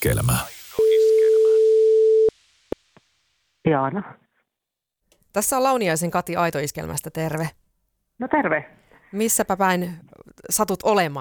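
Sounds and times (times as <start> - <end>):
speech: 0.0 - 0.6, 3.6 - 4.2, 5.3 - 7.6, 8.2 - 11.2
telephone ringback tone while a call is placed: 0.8 - 2.3.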